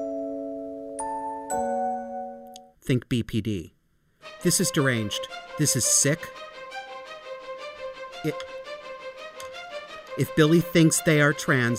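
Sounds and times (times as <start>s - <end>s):
ringing chimes sound effect: 0.0s - 2.7s
speech: 2.9s - 6.5s, 8.2s - 8.6s, 10.2s - 11.7s.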